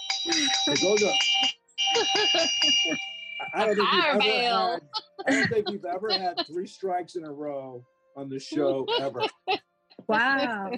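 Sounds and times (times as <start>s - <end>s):
bell struck with bright sustained metallic tone: 0.0s - 6.6s, 8.5s - 9.5s
speech: 0.2s - 10.7s
laughter: 0.3s - 1.1s, 1.9s - 10.7s
people talking loudly: 0.3s - 1.2s, 2.0s - 10.7s.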